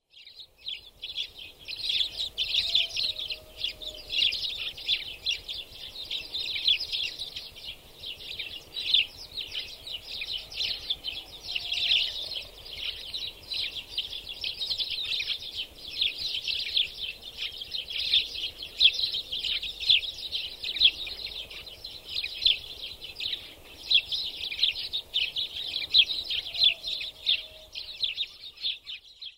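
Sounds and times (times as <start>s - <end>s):
Spanish sparrow chirping: 0.0s - 29.3s.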